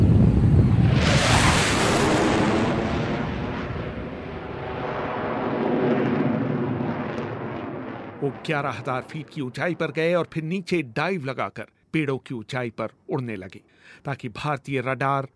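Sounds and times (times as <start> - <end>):
Sabre fighter jet engines roaring on takeoff: 0.0 - 10.0
speech: 8.3 - 15.3.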